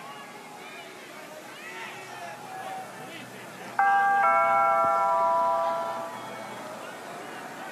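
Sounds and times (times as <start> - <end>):
two-note doorbell chiming ding-dong: 3.8 - 6.5.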